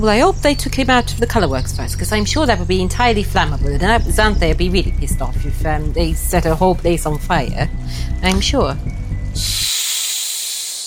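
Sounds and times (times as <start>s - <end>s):
speech: 0.0s - 9.6s
brief low rumble: 0.0s - 9.7s
loud steady snake-like hiss: 9.4s - 10.8s.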